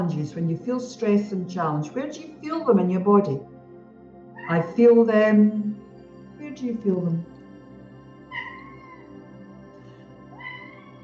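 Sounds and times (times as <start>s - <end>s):
speech: 0.0s - 3.5s, 4.5s - 5.8s, 6.6s - 7.3s
cat meowing: 4.4s - 4.7s, 8.3s - 9.1s, 10.3s - 11.0s.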